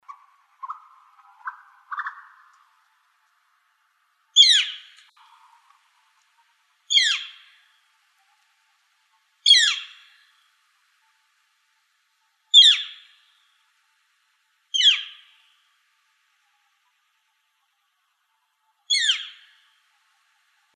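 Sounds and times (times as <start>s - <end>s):
Gilded Flicker woodpecker calls: 0.0s - 2.7s, 4.4s - 5.0s, 6.9s - 7.5s, 9.5s - 10.1s, 12.5s - 13.0s, 14.7s - 15.3s, 18.9s - 19.5s.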